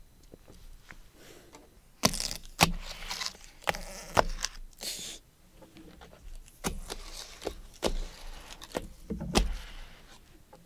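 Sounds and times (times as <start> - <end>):
utility knife slicing tape and cardboard of a package: 2.0 - 4.9, 6.5 - 9.8.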